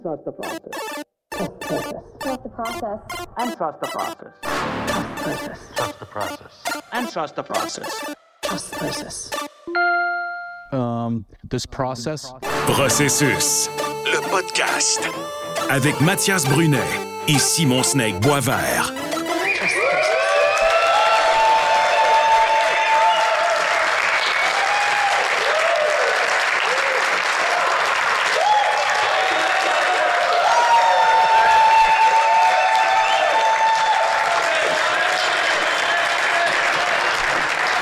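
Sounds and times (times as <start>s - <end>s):
speech: 0.1s - 0.8s, 2.6s - 9.5s, 10.7s - 19.8s
large crowd applauding: 19.4s - 37.7s.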